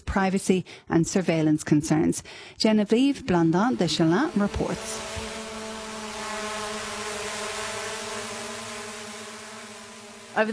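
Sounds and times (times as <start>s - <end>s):
speech: 0.1s - 5.3s, 10.4s - 10.5s
police drone buzzing overhead: 3.0s - 10.5s.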